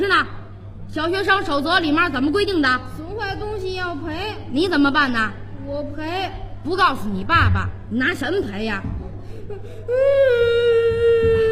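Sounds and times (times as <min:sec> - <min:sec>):
speech: 0:01.0 - 0:10.5
child crying: 0:09.5 - 0:11.5.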